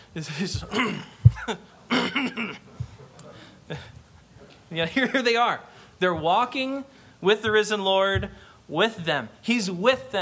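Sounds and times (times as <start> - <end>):
speech: 0.2 - 2.7, 3.7 - 4.0, 4.7 - 10.2
person clearing throat: 0.5 - 2.8
sharp loud grunt: 0.6 - 2.7.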